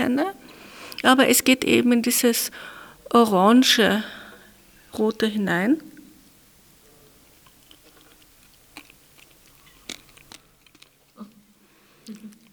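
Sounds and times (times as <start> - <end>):
speech: 0.0 - 0.4, 1.0 - 4.2, 4.9 - 5.9
chewing sandy ochre-red edible earth: 7.3 - 11.2.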